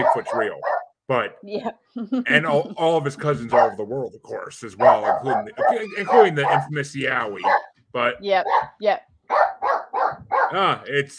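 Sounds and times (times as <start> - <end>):
dog barking: 0.0 - 0.9, 3.3 - 3.9, 4.8 - 7.7, 8.4 - 10.7
laughter: 0.0 - 1.3, 2.3 - 7.4, 10.6 - 11.1
speech: 0.0 - 11.1.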